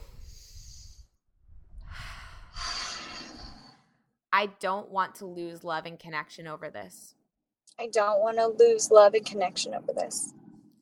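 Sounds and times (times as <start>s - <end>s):
deep breath: 0.0s - 4.0s
speech: 4.4s - 7.2s, 7.8s - 10.4s.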